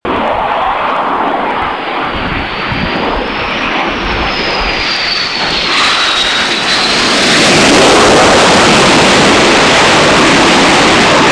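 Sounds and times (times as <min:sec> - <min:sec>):
Hornet aircraft: 0:00.0 - 0:11.3.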